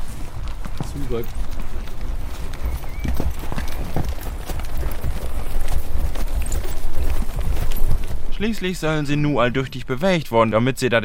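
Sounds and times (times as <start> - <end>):
horse hooves clip-clopping while walking as it is led in a circle: 0.0 - 10.1
speech: 1.0 - 1.6, 8.4 - 11.0.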